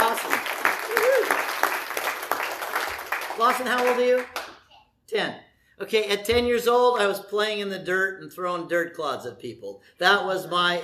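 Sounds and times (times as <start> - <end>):
person whooping or cheering in a crowd: 0.0 - 1.5
audience applauding: 0.0 - 4.6
speech: 3.4 - 4.4, 5.1 - 10.8.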